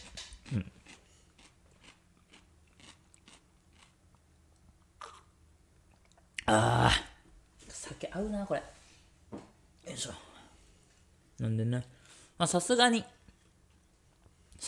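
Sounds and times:
crisp bites of a fresh cucumber: 0.1s - 4.0s
speech: 0.5s - 0.8s, 6.5s - 7.0s, 8.2s - 8.8s, 10.0s - 10.2s, 11.4s - 13.2s.

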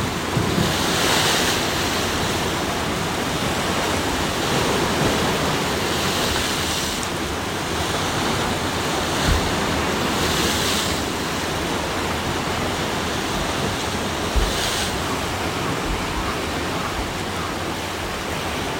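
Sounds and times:
ocean waves washing along the shore: 0.0s - 18.7s.

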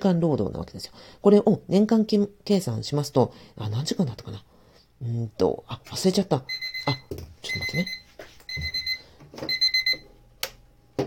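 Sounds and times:
speech: 0.0s - 8.0s, 9.4s - 9.6s
alarm clock electronic beeping: 6.5s - 10.0s.

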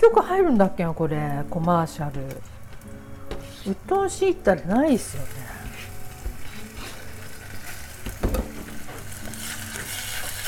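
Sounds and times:
speech: 0.0s - 2.6s, 3.6s - 5.6s
bacon and garlic frying in a pan for soup: 4.8s - 10.4s.

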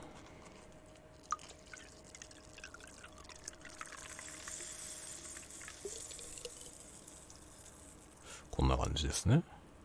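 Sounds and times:
strongly carbonated lemon sparkling water pouring into a glass of gin drink: 1.2s - 8.3s
speech: 8.6s - 9.5s.

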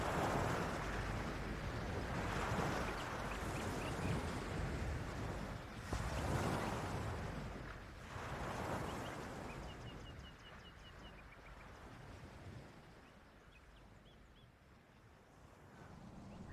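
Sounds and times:
wind buffeting the microphone: 0.0s - 13.0s, 15.3s - 16.5s
ocean waves: 0.0s - 13.3s, 15.2s - 16.5s
faint bird-like calls: 16.2s - 16.5s.

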